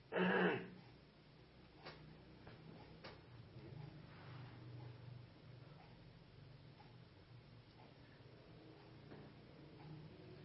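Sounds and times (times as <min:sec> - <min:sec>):
loud harsh throat clearing: 0:00.1 - 0:00.8
faint ticking clicks: 0:00.7 - 0:10.4.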